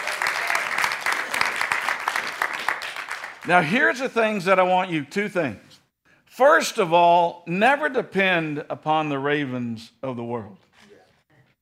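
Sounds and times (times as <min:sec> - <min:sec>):
audience clapping hands in praise to God: 0:00.0 - 0:03.8
speech: 0:03.4 - 0:05.7, 0:06.4 - 0:10.7.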